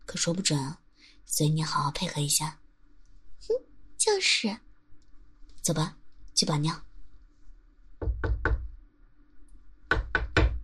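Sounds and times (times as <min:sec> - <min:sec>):
speech: 0:00.1 - 0:02.6, 0:03.4 - 0:04.7, 0:05.6 - 0:06.9
firm knocks on a door: 0:08.0 - 0:08.8, 0:09.9 - 0:10.6.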